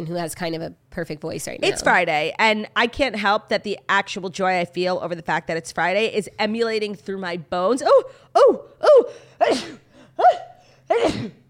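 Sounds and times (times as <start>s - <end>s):
speech: 0.0s - 11.4s
sneeze: 9.4s - 11.4s.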